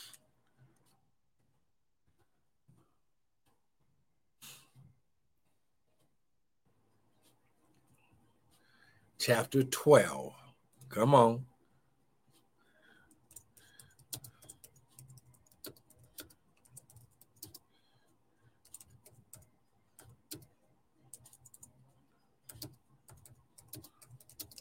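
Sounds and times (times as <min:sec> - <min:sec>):
speech: 0:09.2 - 0:11.5
keyboard typing: 0:13.1 - 0:17.7, 0:18.6 - 0:21.8, 0:22.4 - 0:24.5.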